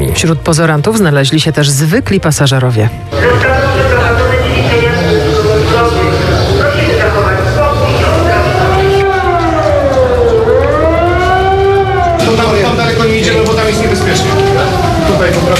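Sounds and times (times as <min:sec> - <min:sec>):
speech: 0:00.2 - 0:04.0
civil defense sirens wailing across Wrocław during an evacuation exercise: 0:03.1 - 0:15.5.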